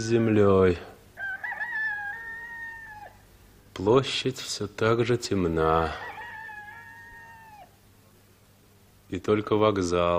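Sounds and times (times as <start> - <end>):
speech: 0.0 - 0.9, 3.8 - 6.1, 9.1 - 10.1
rooster crowing before dawn: 1.2 - 3.3, 5.8 - 7.8.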